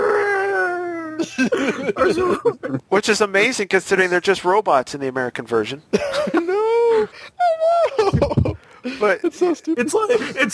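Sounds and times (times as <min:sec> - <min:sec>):
voice imitating a T-Rex's pained roar: 0:00.0 - 0:01.2
laughter: 0:01.2 - 0:02.8, 0:05.9 - 0:10.5
speech: 0:01.2 - 0:10.5.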